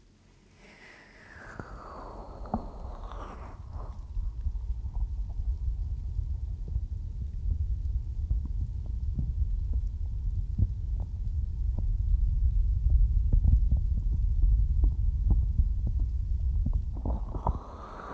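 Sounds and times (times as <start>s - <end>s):
steady low rumble: 1.3s - 18.1s
heartbeat: 3.6s - 18.1s.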